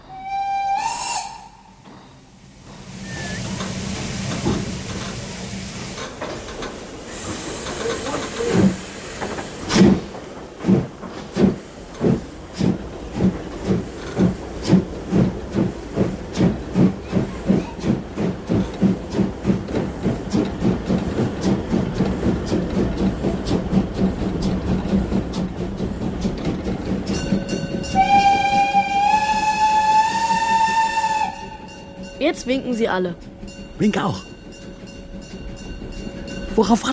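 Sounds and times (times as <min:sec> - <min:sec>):
locomotive whistle as the train departs: 0:00.0 - 0:01.8, 0:03.0 - 0:03.6, 0:27.8 - 0:31.9
steam locomotive chuffing: 0:00.0 - 0:36.9
hissing steam: 0:00.1 - 0:31.8
speech: 0:32.3 - 0:34.3, 0:36.6 - 0:36.9.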